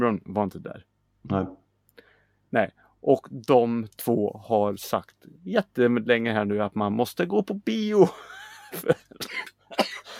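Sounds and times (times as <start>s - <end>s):
speech: 0.1s - 1.6s, 2.5s - 10.0s
cough: 9.2s - 10.1s.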